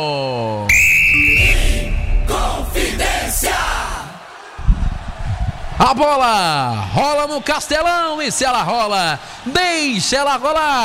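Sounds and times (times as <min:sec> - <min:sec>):
speech: 0:00.0 - 0:00.4, 0:05.8 - 0:10.8
referee's whistle blast to start the second half of a football match: 0:00.7 - 0:02.7
rumbling crowd noise at a football stadium: 0:00.7 - 0:10.8
brief low droning tone: 0:01.1 - 0:03.8.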